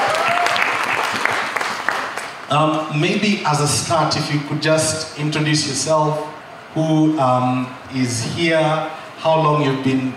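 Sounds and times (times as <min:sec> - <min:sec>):
audience applause: 0:00.0 - 0:02.5
speech: 0:02.5 - 0:10.1.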